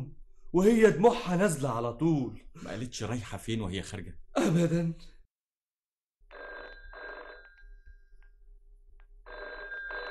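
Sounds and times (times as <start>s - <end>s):
speech: 0.5s - 5.1s
telephone ringing in paired bursts of bell tone: 6.3s - 8.2s, 9.2s - 10.0s.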